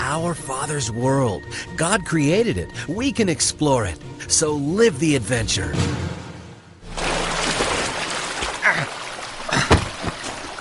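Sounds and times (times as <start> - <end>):
speech: 0.2 - 6.0
river water rushing: 6.9 - 10.5.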